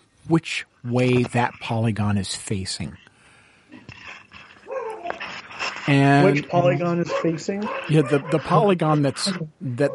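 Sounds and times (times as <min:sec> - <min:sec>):
speech: 0:00.3 - 0:03.0, 0:05.8 - 0:09.9
dog yipping and whimpering: 0:04.6 - 0:05.2.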